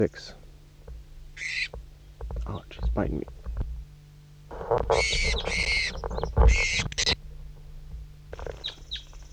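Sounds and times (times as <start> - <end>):
speech: 0.0 - 0.4, 2.5 - 3.4, 4.7 - 7.2
bird chirps: 0.0 - 9.3
bird giving harsh chirps and squawks while being handled: 1.4 - 1.8, 4.5 - 7.2, 8.4 - 9.3.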